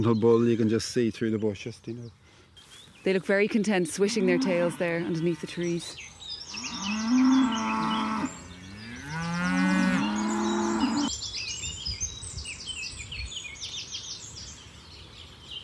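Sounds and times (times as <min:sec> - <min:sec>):
speech: 0:00.0 - 0:02.2, 0:03.0 - 0:07.0
birds chirping: 0:00.0 - 0:15.6
brown cow bellowing loudly on a farm: 0:04.1 - 0:05.4, 0:06.6 - 0:11.1.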